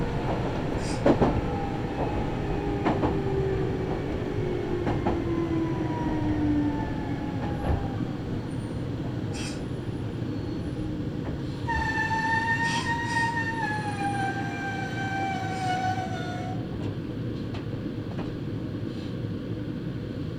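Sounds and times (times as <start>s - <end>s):
sharp clicks from the rails: 0.0s - 18.4s
train rolling along on a mostly single-track line: 0.0s - 20.3s.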